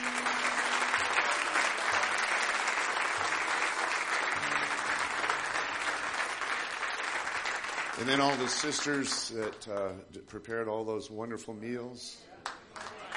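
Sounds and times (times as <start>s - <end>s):
sizeable audience applauding: 0.0s - 9.6s, 12.4s - 13.1s
speech: 8.0s - 12.3s.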